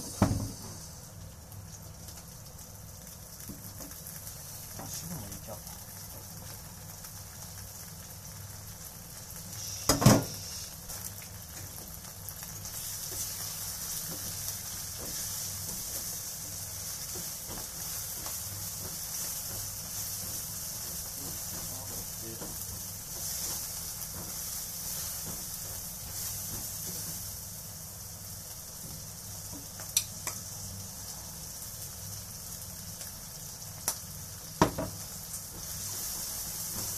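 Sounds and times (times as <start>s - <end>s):
garlic, anchovies and bacon sizzling in a pan for spaghetti arrabbiata: 0.0s - 36.9s
sharp pop: 9.9s - 10.4s.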